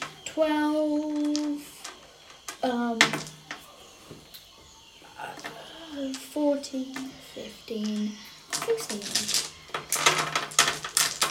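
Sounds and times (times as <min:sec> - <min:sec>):
speech: 0:00.4 - 0:01.0, 0:02.6 - 0:03.2, 0:06.6 - 0:09.4
handful of dice clattering across a hard surface: 0:01.0 - 0:03.6, 0:05.4 - 0:11.2.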